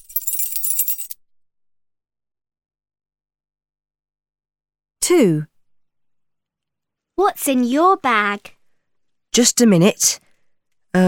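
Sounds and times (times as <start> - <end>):
keys shaken on a key ring: 0.0 - 1.2
speech: 5.0 - 5.5, 7.2 - 8.6, 9.3 - 10.2.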